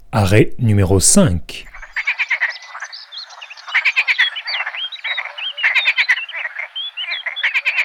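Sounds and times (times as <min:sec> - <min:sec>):
speech: 0:00.1 - 0:01.7
chorus of green frogs croaking in a wetland: 0:01.7 - 0:07.8.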